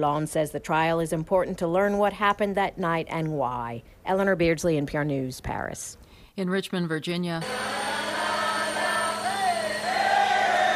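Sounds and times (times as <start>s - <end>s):
speech: 0.0s - 8.0s
large outdoor crowd cheering as a statue is hoisted by crane in Richmond, Virginia: 7.4s - 10.7s.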